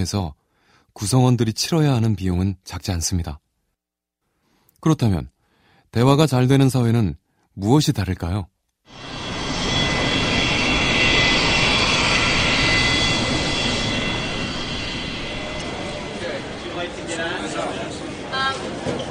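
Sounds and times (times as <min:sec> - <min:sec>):
speech: 0:00.0 - 0:00.4, 0:01.0 - 0:03.4, 0:04.8 - 0:09.1
airplane engine roar on a flight from Seoul to India: 0:08.9 - 0:19.0.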